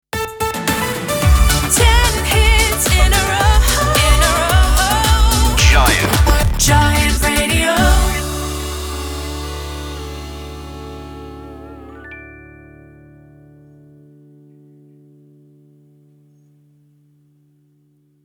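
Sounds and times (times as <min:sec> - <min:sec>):
sung slogan jingle in D major: 0:00.2 - 0:13.4.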